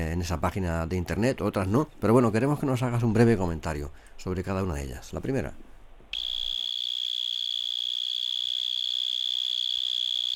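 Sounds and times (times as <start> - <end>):
speech: 0.2 - 5.6
mole cricket trilling: 6.2 - 10.3.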